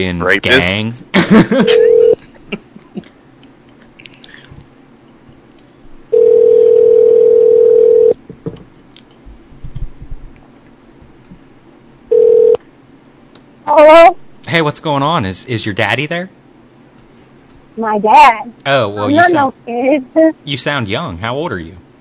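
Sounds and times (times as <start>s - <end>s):
speech: 0.0s - 2.6s, 13.8s - 16.4s, 17.8s - 21.8s
laughter: 1.1s - 3.1s
telephone tones for a prank call: 1.6s - 2.2s, 6.1s - 8.2s, 12.1s - 12.6s.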